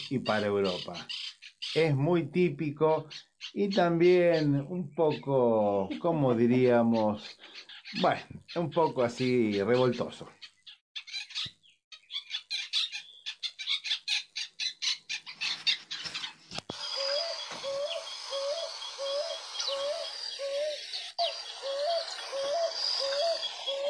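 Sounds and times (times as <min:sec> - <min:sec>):
picazuro pigeon calling with chirping pulses and hooting coos: 0:00.0 - 0:01.9, 0:03.1 - 0:23.8
speech: 0:00.1 - 0:10.4.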